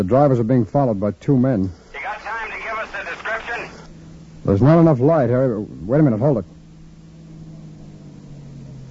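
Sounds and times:
speech: 0.0s - 2.4s, 4.4s - 6.6s
sedan engine running with a low droning hum: 5.6s - 8.8s.

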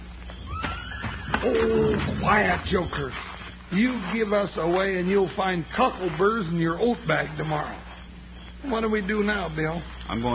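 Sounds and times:
hoof thud: 0.2s - 9.2s
horse whinnying: 0.4s - 2.6s
speech: 1.4s - 7.9s, 8.6s - 10.3s.

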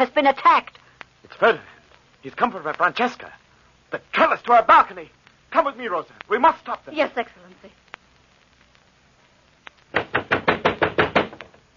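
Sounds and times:
speech: 0.0s - 7.8s
loud knocking on a wooden door: 9.9s - 11.6s.

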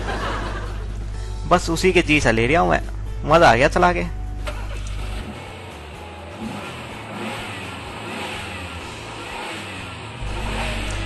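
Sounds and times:
laughter: 0.0s - 1.1s
speech: 1.5s - 4.2s
car engine idling and revving: 4.3s - 11.0s.

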